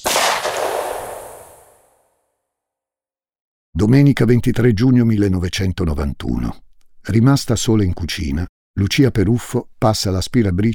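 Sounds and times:
gunshot from modified blank-firing pistol: 0.0 - 1.9
speech: 3.8 - 10.7.

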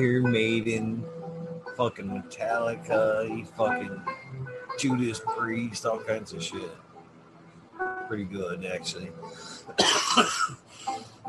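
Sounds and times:
speech: 0.0 - 1.2, 1.8 - 6.8, 8.1 - 11.2
person coughing: 9.8 - 10.6.

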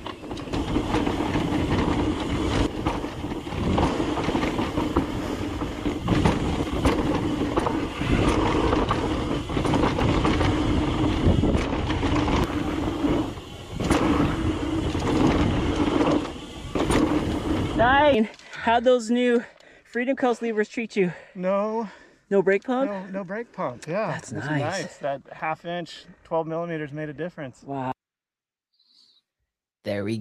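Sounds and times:
alpine luge sled rolling down its track: 0.0 - 18.3
speech: 18.2 - 28.0, 29.8 - 30.2.

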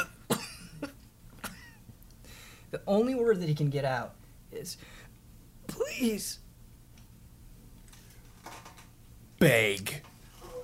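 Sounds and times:
voice acting out a man coughing and sputtering up blood: 0.0 - 1.8
speech: 2.7 - 5.0, 6.0 - 6.4, 9.4 - 10.1.

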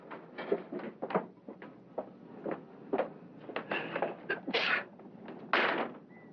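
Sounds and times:
clattering knocks and thuds: 0.0 - 4.5, 5.2 - 6.1
door being shut: 5.3 - 6.1.

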